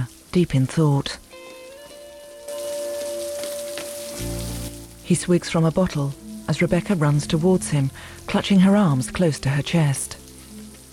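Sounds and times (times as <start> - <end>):
steady rain falling on a metal stair: 0.0 - 10.9
speech: 0.4 - 1.2, 5.1 - 10.2.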